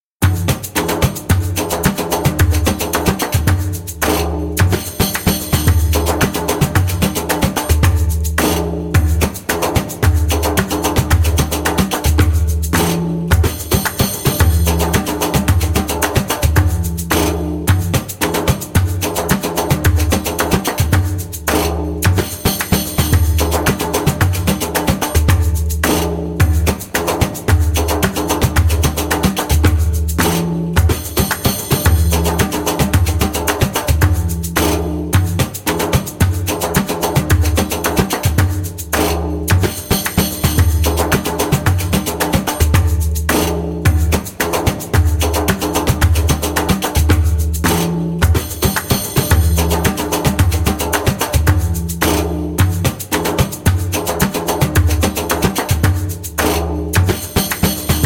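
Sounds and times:
fast long maqsum rhythm on djembe: 0:00.2 - 0:58.0.

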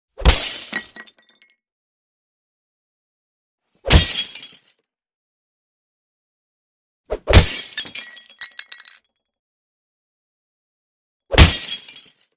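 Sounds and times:
fist punching glass: 0:07.3 - 0:07.8, 0:11.4 - 0:11.9.

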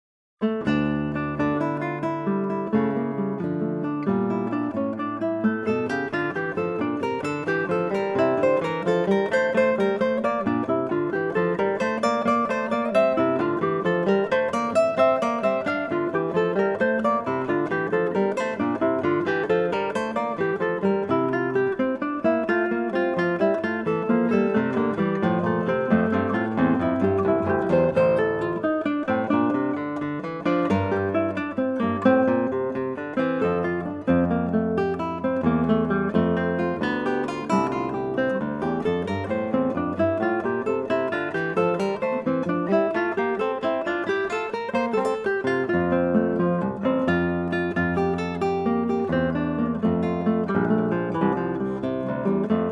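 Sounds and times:
gigue on eight-string guitar: 0:00.4 - 0:52.7.

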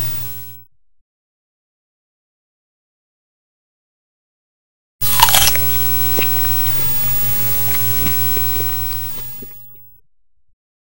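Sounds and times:
something being eaten: 0:05.0 - 0:09.8.

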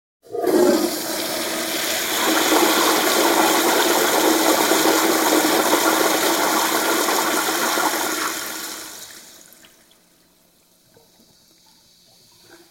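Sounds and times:
public toilet flushing: 0:00.2 - 0:09.7.

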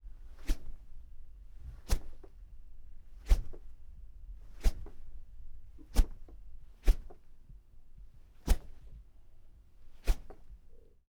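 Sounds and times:
fly swatter light whoosh swish: 0:01.9 - 0:02.2, 0:04.6 - 0:05.0, 0:06.8 - 0:07.2, 0:08.5 - 0:08.8, 0:10.0 - 0:10.4.

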